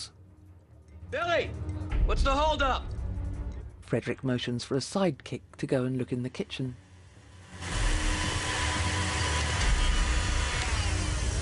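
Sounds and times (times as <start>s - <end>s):
speech: 1.1s - 2.9s, 3.9s - 6.8s
liquidizer blender motor whirring: 7.2s - 11.4s.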